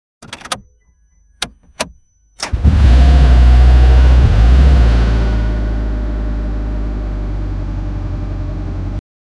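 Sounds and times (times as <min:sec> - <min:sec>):
jeep ignition: 0:00.2 - 0:04.9
jeep engine: 0:01.4 - 0:09.0.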